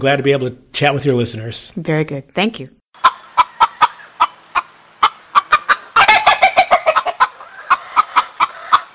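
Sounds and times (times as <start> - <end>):
speech: 0.0 - 3.1
chickens clucking: 3.0 - 8.9.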